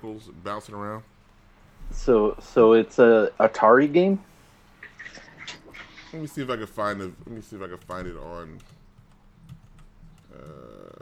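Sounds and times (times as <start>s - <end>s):
speech: 0.0s - 1.2s, 1.9s - 4.3s, 6.1s - 8.8s, 10.3s - 11.0s
low hum: 0.0s - 11.0s
computer keyboard key clicks: 7.8s - 10.6s.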